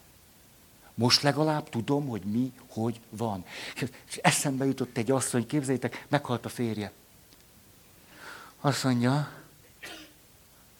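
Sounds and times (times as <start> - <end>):
faint hiss: 0.0 - 10.7
speech: 1.0 - 7.0, 8.6 - 10.0
person sneezing: 9.7 - 10.2.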